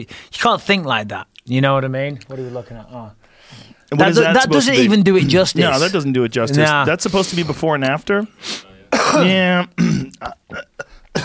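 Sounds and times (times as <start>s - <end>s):
speech: 0.0s - 11.2s
congested person clearing throat: 8.9s - 11.2s
congested person coughing, recovering from a cold: 8.9s - 11.2s.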